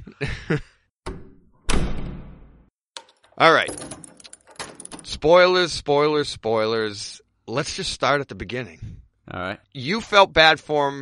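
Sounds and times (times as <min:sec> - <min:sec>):
speech: 0:00.1 - 0:00.7, 0:03.4 - 0:03.8, 0:05.1 - 0:10.9
door lock clicking: 0:03.0 - 0:05.1
keys jangling: 0:03.0 - 0:05.1.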